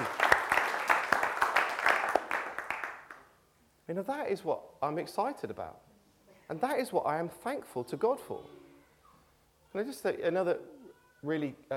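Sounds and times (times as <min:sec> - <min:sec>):
audience applauding: 0:00.0 - 0:03.2
speech: 0:03.9 - 0:05.9, 0:06.5 - 0:08.6, 0:09.7 - 0:11.7.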